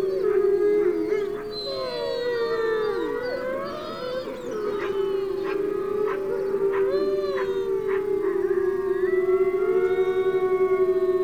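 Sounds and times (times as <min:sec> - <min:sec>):
coyote yip howls: 0:00.0 - 0:08.4
wolf chorus howling: 0:00.0 - 0:11.2.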